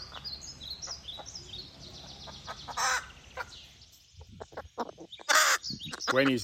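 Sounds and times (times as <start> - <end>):
crow cackling like a hen: 2.4 - 3.6, 4.4 - 6.4.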